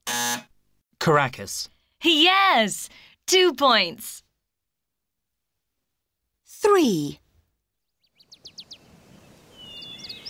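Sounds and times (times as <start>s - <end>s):
speech: 1.0s - 4.2s, 6.6s - 7.2s
bird chirps: 7.8s - 10.2s
high twittering bird calls: 8.0s - 10.2s.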